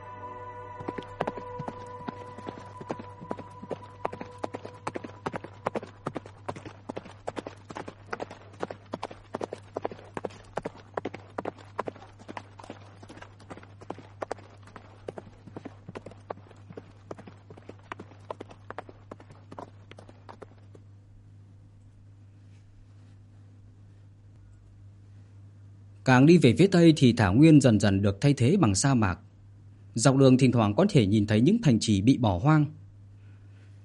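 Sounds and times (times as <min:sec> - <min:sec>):
constant low hum: 0:00.0 - 0:26.0
speech: 0:00.8 - 0:01.0, 0:26.1 - 0:29.2, 0:30.0 - 0:32.8
ridden horse hooves clip-clopping: 0:00.8 - 0:20.9.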